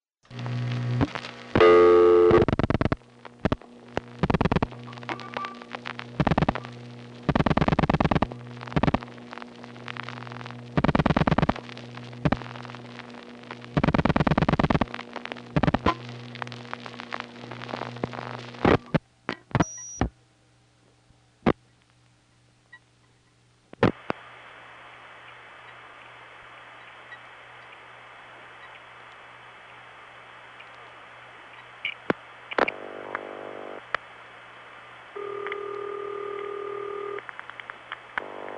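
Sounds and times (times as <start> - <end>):
steady low electrical hum: 0.3 - 38.5
telephone ringback over a line: 35.2 - 37.2.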